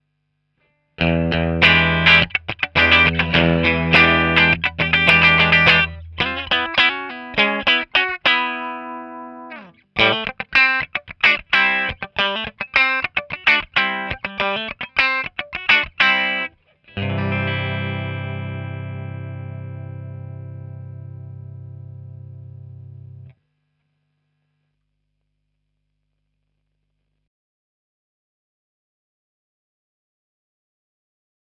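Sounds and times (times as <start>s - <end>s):
clean tele electric guitar: 1.0s - 23.3s.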